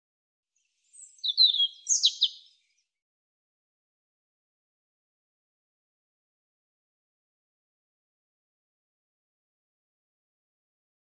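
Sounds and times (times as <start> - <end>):
European robin song: 0.6 - 2.9.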